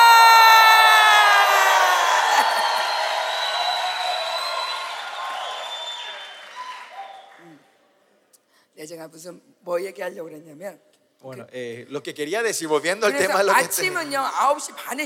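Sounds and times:
large crowd shouting and cheering: 0.0 - 7.6
speech: 9.0 - 15.0.

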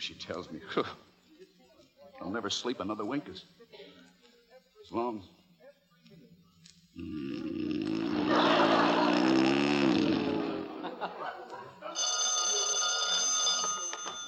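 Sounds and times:
speech: 0.0 - 1.1, 2.2 - 3.7, 4.9 - 5.4, 7.0 - 7.6
low groaning and mumbling vocal sounds: 7.0 - 10.9
laughter: 7.8 - 12.0
telephone bell ringing: 12.0 - 14.2.

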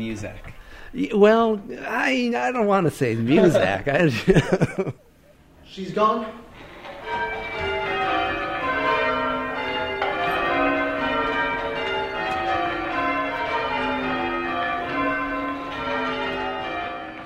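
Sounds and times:
speech: 0.0 - 5.1, 5.7 - 6.5
laughter: 3.2 - 5.3
peal of church bells ringing: 6.5 - 17.2.

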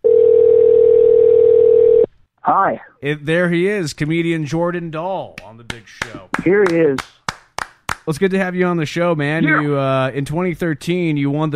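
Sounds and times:
telephone ringback tone on an outgoing call: 0.0 - 2.1
speech: 2.4 - 7.2, 8.0 - 11.5.

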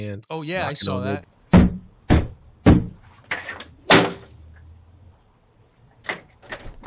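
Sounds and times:
speech: 0.0 - 1.3
pounding on a wooden house door: 1.5 - 3.0.

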